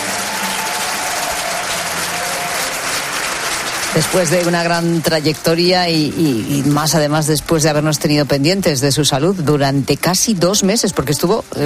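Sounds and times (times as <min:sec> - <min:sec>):
large audience applause: 0:00.0 - 0:07.6
speech: 0:04.0 - 0:11.6.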